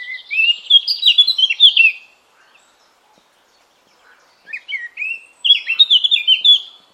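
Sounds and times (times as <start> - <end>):
Eurasian blackcap singing warbled phrases of slurred whistles: 0.0 - 6.9.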